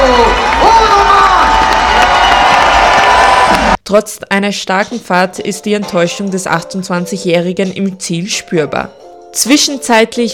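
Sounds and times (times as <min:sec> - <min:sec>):
large crowd applauding: 0:00.0 - 0:03.8
speech: 0:03.9 - 0:10.3.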